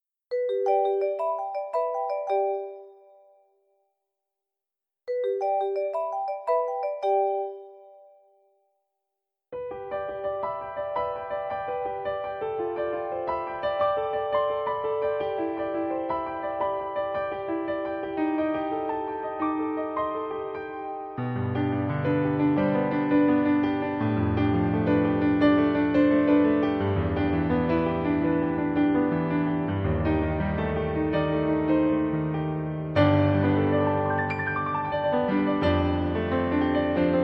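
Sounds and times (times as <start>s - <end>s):
marimba: 0.3s - 3.3s, 5.1s - 8.2s
piano: 0.3s - 3.4s, 5.1s - 8.1s, 9.6s - 37.2s.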